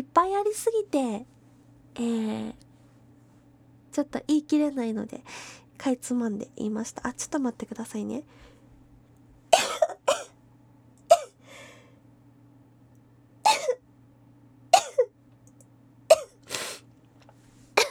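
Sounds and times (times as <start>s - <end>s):
faint steady hum: 0.0s - 17.8s
speech: 0.2s - 1.4s, 2.0s - 2.6s, 4.0s - 8.5s
breaths: 5.2s - 5.8s, 8.3s - 8.7s, 11.4s - 12.0s
person sneezing: 13.5s - 13.8s, 16.1s - 16.9s.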